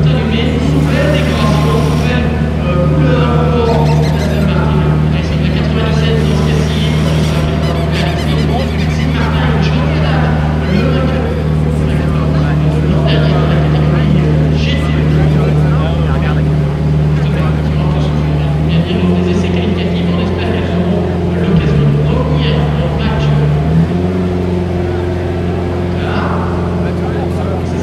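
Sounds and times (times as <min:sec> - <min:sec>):
indistinct voices murmuring: 0:00.0 - 0:16.5
Aston Martin GT race car engine droning at Le Mans: 0:00.0 - 0:27.8.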